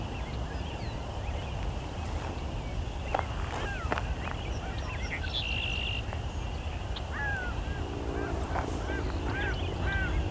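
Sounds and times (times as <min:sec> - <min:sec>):
steady broad rumble: 0:00.2 - 0:10.3
gulls calling while flying overhead: 0:03.0 - 0:10.3.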